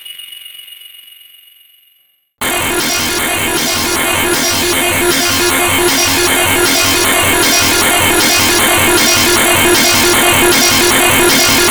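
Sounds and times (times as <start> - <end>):
dense loud mechanical hum from a circuit bent synthesizer: 2.4 - 11.6
thin tone of a circuit bent synthesizer drone: 2.5 - 11.6.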